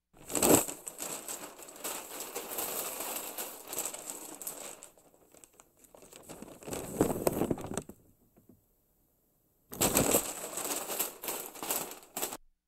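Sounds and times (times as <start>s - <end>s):
paper bag removed from head: 0.2s - 8.0s, 9.7s - 12.4s.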